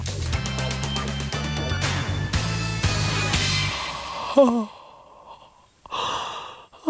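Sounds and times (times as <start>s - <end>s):
musical jingle: 0.4s - 4.0s
person yawning: 4.1s - 5.0s.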